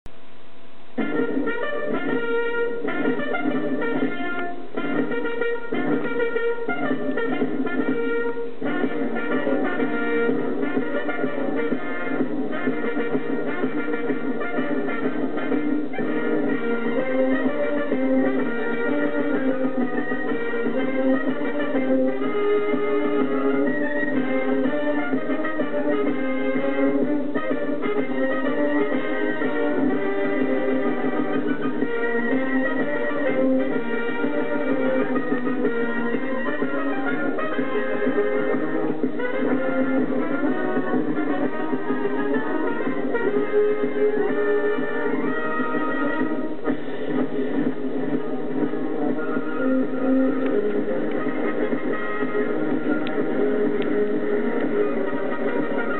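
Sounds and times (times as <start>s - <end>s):
military march music: 0.7s - 55.9s.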